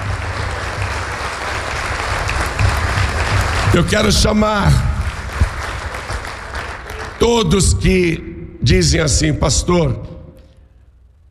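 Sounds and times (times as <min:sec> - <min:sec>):
large audience applauding: 0:00.0 - 0:07.9
speech: 0:03.7 - 0:04.9, 0:07.2 - 0:10.0.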